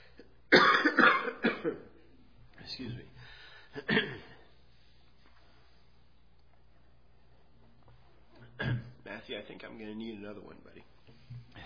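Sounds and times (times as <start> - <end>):
wet chesty coughing: 0.0 - 2.1, 3.7 - 4.5, 8.4 - 9.0
speech: 9.4 - 11.6.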